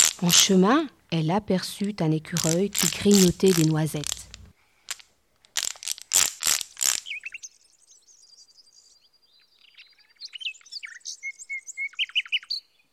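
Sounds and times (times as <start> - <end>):
speech: 0.2 - 4.2
birds singing in tree branches: 7.0 - 12.9.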